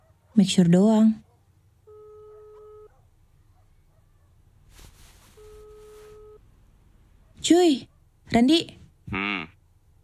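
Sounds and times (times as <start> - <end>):
low hum: 0.0 - 10.0
speech: 0.4 - 1.2, 7.5 - 9.5
phone line ringing through a handset: 1.9 - 2.9, 5.4 - 6.4
rustling noise: 4.6 - 6.4.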